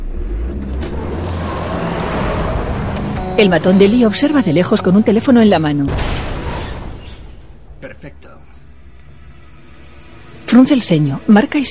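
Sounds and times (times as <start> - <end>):
truck reversing, braking and accelerating toward a car: 0.0 - 10.7
broadband road noise: 0.0 - 11.6
speech: 3.4 - 6.2, 10.5 - 11.6.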